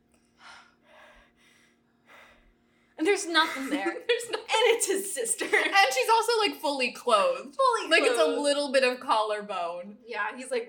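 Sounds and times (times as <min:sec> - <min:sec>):
voice imitating creepy heavy breathing: 0:00.3 - 0:03.0
speech: 0:03.0 - 0:10.6.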